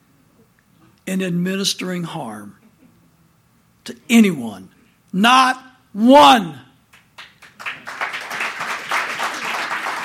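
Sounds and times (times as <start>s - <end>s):
speech: 1.1s - 2.6s, 3.9s - 6.6s
crowd applauding: 6.9s - 10.0s.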